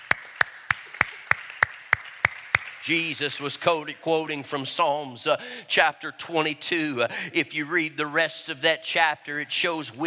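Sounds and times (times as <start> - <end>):
audience clapping in unison: 0.0 - 3.4
speech: 2.8 - 10.0.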